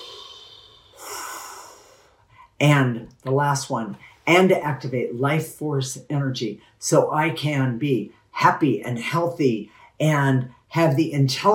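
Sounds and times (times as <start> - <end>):
person taking a breath: 0.0 - 2.6
speech: 2.6 - 11.5.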